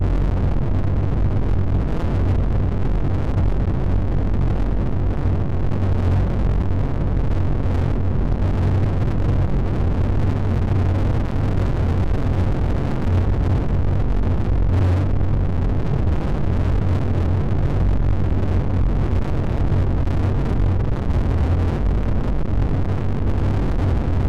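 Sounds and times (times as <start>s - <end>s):
rumble: 0.0s - 24.2s.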